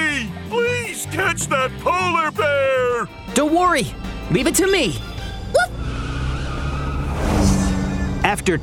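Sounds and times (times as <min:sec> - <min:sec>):
speech: 0:01.0 - 0:05.2, 0:08.3 - 0:08.6
police car tires skidding and squealing against the road while braking hard: 0:03.8 - 0:08.6.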